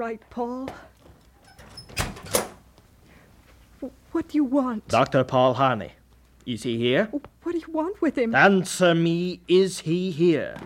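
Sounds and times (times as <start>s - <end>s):
speech: 0.0s - 0.9s, 3.8s - 10.6s
low hiss: 0.0s - 10.6s
door clicks as a door is opened: 1.5s - 2.6s.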